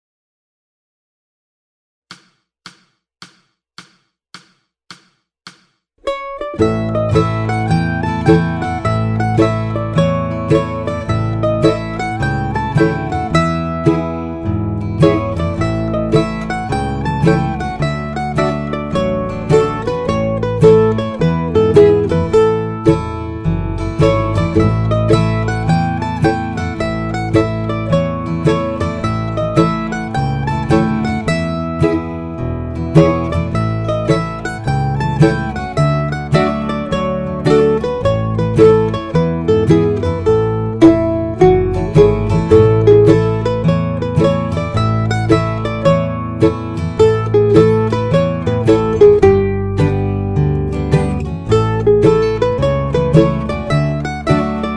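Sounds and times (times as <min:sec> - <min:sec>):
slow mandolin: 0:06.0 - 0:54.7.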